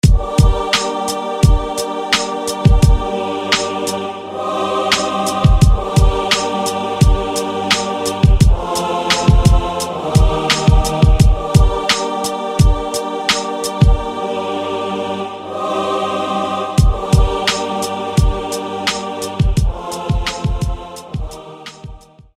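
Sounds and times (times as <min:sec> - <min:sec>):
church choir singing: 0:00.0 - 0:22.3.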